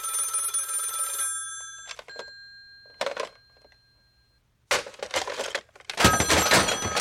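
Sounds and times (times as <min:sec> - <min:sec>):
telephone ringing: 0:00.0 - 0:04.5, 0:06.0 - 0:07.0
sharp cracks, thuds and breaking clatter: 0:04.7 - 0:07.0.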